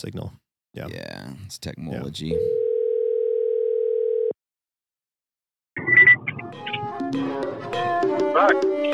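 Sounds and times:
speech: 0.0 - 2.6
mobile phone dial tone as a call is placed: 2.5 - 4.4
busy music: 6.3 - 8.9.

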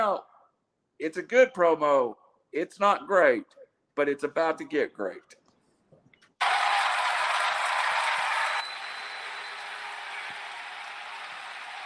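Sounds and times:
speech: 0.0 - 0.3, 1.0 - 5.4
crowd booing: 6.4 - 11.8.

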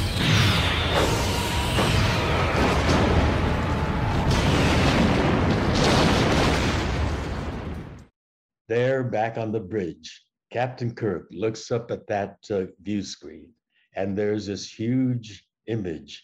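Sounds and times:
film-style spaceship explosion with crackling bursts and whooshes: 0.1 - 8.0
speech: 8.7 - 16.2.

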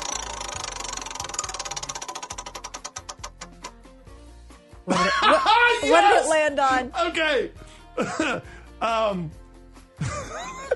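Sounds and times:
prize wheel spun for a game clicking: 0.0 - 3.8
speech: 4.8 - 9.4
laughter: 4.9 - 6.2, 10.0 - 10.7.

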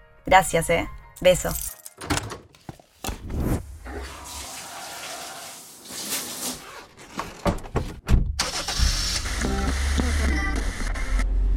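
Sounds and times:
speech: 0.3 - 2.1
sharp thunks: 7.4 - 8.4
car engine turning over: 8.3 - 11.5.

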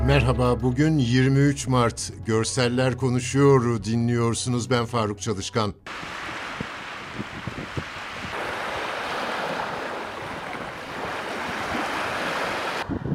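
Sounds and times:
speech: 0.1 - 6.2
sea waves washing onto a beach in Antalya Turkey: 5.9 - 13.1
wind gusts buffeting a mobile phone microphone: 6.0 - 13.1.

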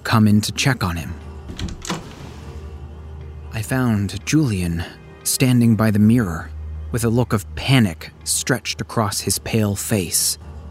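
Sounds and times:
speech: 0.1 - 1.2, 3.6 - 10.5
soft knock or latch click: 1.5 - 2.4
door pushed open with a short creak: 1.5 - 2.6.

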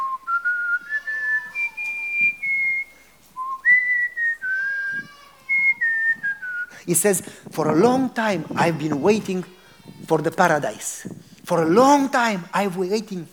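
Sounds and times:
person whistling a slow hymn tune: 0.0 - 6.9
speech: 6.9 - 13.3.

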